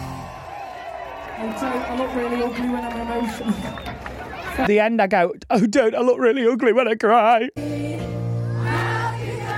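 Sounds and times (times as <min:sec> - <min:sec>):
murmuring crowd: 0:01.2 - 0:04.7
speech: 0:01.5 - 0:07.8
crowd singing a birthday song: 0:07.5 - 0:09.5.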